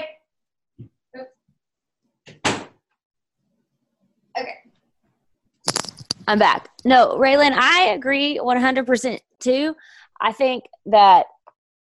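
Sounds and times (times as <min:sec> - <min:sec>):
door shutting with a thump: 0:02.3 - 0:02.8
speech: 0:06.3 - 0:11.3.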